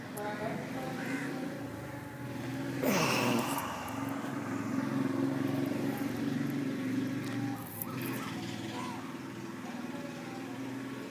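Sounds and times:
faint street background: 0.0 - 11.1
moped engine droning: 0.0 - 11.1.

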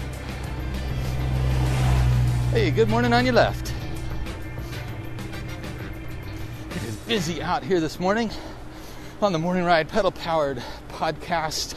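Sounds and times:
go-kart engine driving toward a cyclist: 0.0 - 8.8
speech: 2.6 - 3.7, 6.9 - 8.5, 9.2 - 11.7.

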